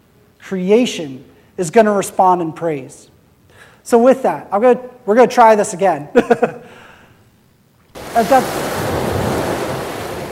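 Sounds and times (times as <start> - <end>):
speech: 0.5 - 3.1, 3.9 - 6.8, 8.2 - 8.7
roaring ocean waves: 7.9 - 10.3.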